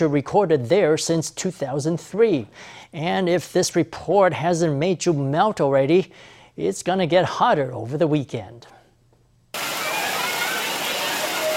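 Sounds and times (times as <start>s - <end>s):
speech: 0.0s - 8.7s
people splashing water in a wading pool: 9.6s - 11.5s.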